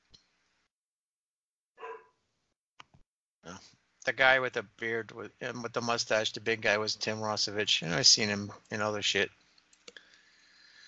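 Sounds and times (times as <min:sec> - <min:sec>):
dog barking downstairs: 0:01.8 - 0:02.2
speech: 0:03.6 - 0:09.4.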